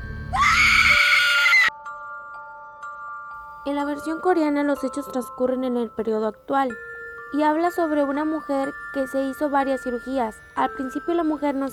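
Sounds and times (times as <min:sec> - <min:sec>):
woman screaming high-pitched: 0:00.3 - 0:01.7
speech: 0:03.6 - 0:11.7.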